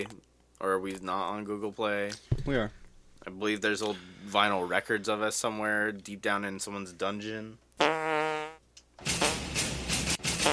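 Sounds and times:
speech: 0.0s - 8.0s
loud buzzy soundboard fart sound effect: 7.8s - 10.5s.

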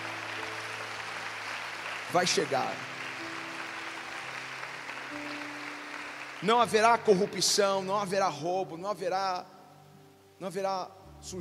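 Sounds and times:
audience clapping loudly: 0.0s - 8.1s
sustained low musical tones: 0.0s - 11.4s
speech: 2.1s - 3.0s, 6.4s - 9.5s, 10.4s - 11.4s.

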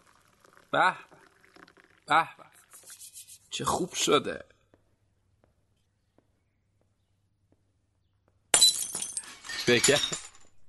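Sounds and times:
speech: 0.7s - 1.2s, 2.1s - 2.4s, 3.6s - 4.5s, 9.7s - 10.2s
glass teacup knocked and shattering: 8.5s - 10.6s
tinkling glass shards settling: 8.6s - 10.5s.

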